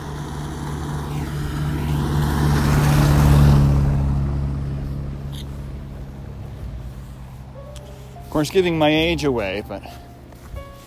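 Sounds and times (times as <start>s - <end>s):
mail truck driving past: 0.0s - 10.8s
speech: 8.4s - 10.0s.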